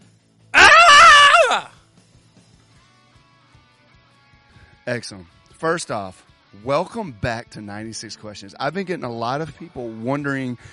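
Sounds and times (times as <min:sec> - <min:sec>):
person imitating a scream: 0:00.6 - 0:01.8
speech: 0:01.5 - 0:01.7, 0:04.9 - 0:10.7.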